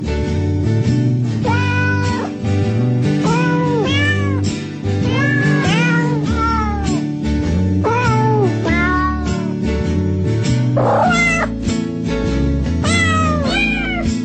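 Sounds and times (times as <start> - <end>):
background music: 0.8 - 14.2
cat meowing: 1.4 - 2.4, 3.2 - 7.0, 7.8 - 9.6, 10.8 - 11.6, 12.8 - 14.2.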